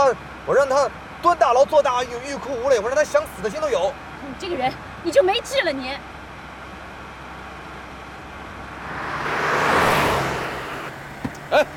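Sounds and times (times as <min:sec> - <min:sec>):
speech: 0:00.1 - 0:06.1
car driving fast: 0:08.5 - 0:11.7.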